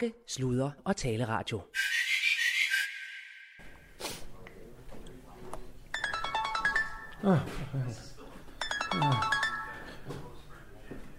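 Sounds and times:
speech: 0.0 - 1.9, 7.2 - 8.1, 8.9 - 9.4
phone ringtone for an incoming call: 5.9 - 7.5, 8.6 - 10.2.

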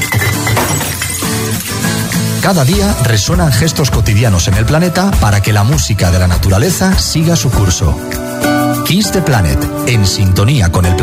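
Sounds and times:
glass bottles crashing and clinking into a recycling bin: 0.0 - 2.4
speech: 2.4 - 11.0.

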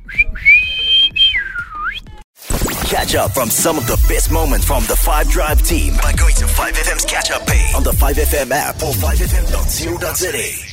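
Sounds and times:
referee's shrill whistle signalling end of match: 0.0 - 2.2
speech: 3.0 - 10.7.

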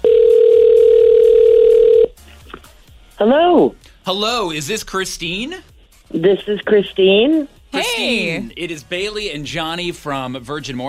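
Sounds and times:
telephone line tone: 0.0 - 2.1
speech: 3.2 - 10.8.

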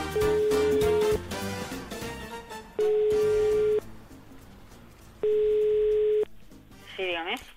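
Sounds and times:
telephone ringback tone from a call being placed: 0.0 - 1.2, 2.8 - 3.8, 5.2 - 6.3.

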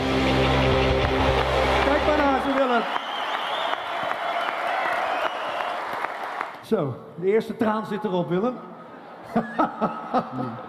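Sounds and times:
large audience applauding in a full concert hall: 0.2 - 6.6
speech: 6.7 - 8.7, 9.3 - 10.6
laughter: 8.8 - 10.6.

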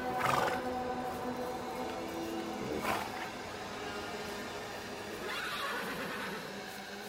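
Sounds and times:
several horses neighing and whinnying: 0.1 - 0.8, 1.4 - 6.9.

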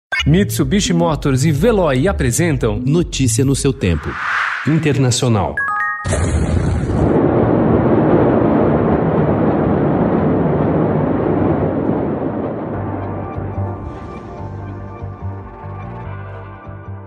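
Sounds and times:
speech: 0.2 - 6.8
huge explosion at a port: 3.8 - 14.4.

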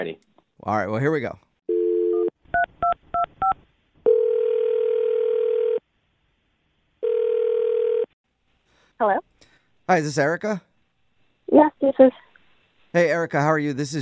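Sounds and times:
speech: 0.0 - 1.4, 9.0 - 9.3, 9.9 - 10.7, 11.5 - 12.2, 12.9 - 13.9
telephone dial tone: 1.7 - 2.3, 4.1 - 5.8, 7.0 - 8.1.

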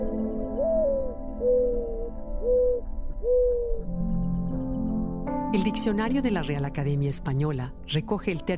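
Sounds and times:
turtle dove cooing: 0.1 - 4.3
speech: 5.6 - 8.5.

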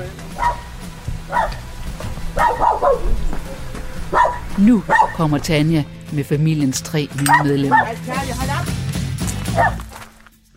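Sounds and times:
low steady rumble: 0.0 - 6.2
excited dog barking in short sharp bursts: 0.4 - 1.7, 2.3 - 5.2, 7.3 - 8.0, 9.5 - 9.9
speech: 4.6 - 8.8, 9.6 - 9.8.

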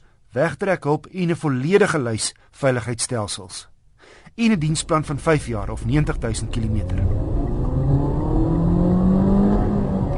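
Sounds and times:
speech: 0.4 - 3.7, 4.4 - 7.2
2-litre car engine revving: 4.6 - 10.1.

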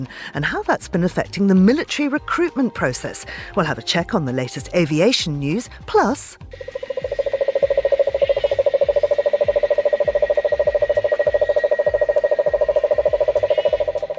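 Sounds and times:
speech: 0.0 - 7.2
cane toad giving a long steady low trill: 6.5 - 14.1.

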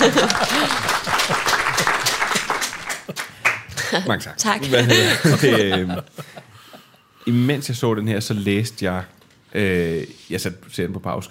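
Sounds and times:
audience applauding: 0.0 - 4.0
laughter: 0.0 - 4.0, 4.6 - 7.0
speech: 4.0 - 6.2, 7.2 - 11.2.

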